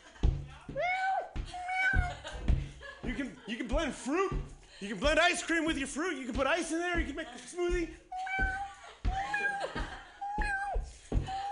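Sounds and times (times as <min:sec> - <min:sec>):
dull thumps or knocks: 0:00.0 - 0:11.5
cat meowing: 0:00.8 - 0:02.2, 0:08.2 - 0:10.8, 0:11.4 - 0:11.5
laughter: 0:01.5 - 0:04.2, 0:08.6 - 0:10.4
speech: 0:03.5 - 0:08.5.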